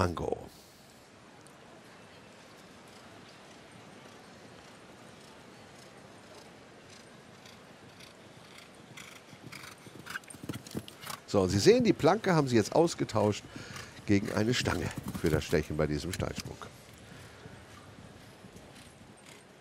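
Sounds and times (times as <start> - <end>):
speech: 0.0 - 0.4, 11.3 - 16.7
show jumping arena ambience: 0.0 - 19.5
horse hoofbeats cantering in a show jumping arena: 2.6 - 11.3, 13.2 - 15.7, 17.5 - 19.5.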